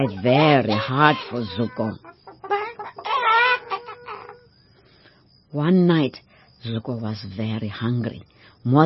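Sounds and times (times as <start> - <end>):
speech: 0.0 - 2.1, 5.5 - 8.8
chickens screeching and cackling: 0.0 - 4.6.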